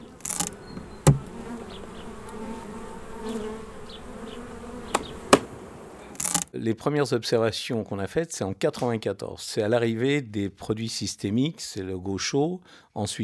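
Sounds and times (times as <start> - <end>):
sharp clicks or taps: 0.0 - 1.3, 4.9 - 5.5, 6.1 - 6.5
bees buzzing: 0.0 - 6.4
speech: 6.6 - 13.2.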